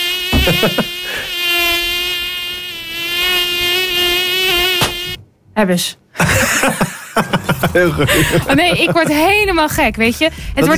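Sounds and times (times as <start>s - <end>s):
mosquito whining: 0.0s - 5.2s
laughter: 0.4s - 1.2s, 6.2s - 9.6s
speech: 0.5s - 0.9s, 5.6s - 6.8s, 7.6s - 10.7s.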